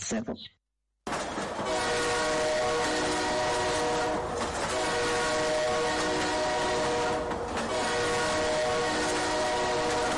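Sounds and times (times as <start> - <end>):
speech: 0.1 - 1.2
train horn blaring: 1.6 - 10.1.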